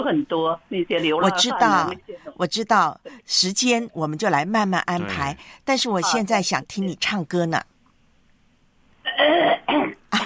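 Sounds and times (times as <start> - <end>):
speech: 0.0 - 7.7
person clearing their throat before singing: 5.0 - 5.4, 9.1 - 10.2.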